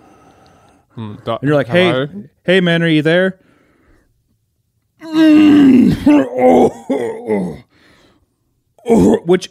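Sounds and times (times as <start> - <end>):
faint breath: 0.0 - 1.0, 3.4 - 4.2, 7.7 - 8.6
speech: 1.0 - 3.5, 5.2 - 7.7, 8.8 - 9.5
person imitating a drawn-out dying groan: 5.0 - 7.7, 8.8 - 9.3.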